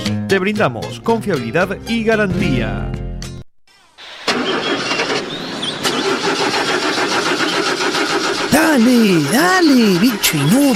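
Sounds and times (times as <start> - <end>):
speech: 0.3 - 3.0, 8.8 - 10.7
generator engine cranking: 4.0 - 10.7.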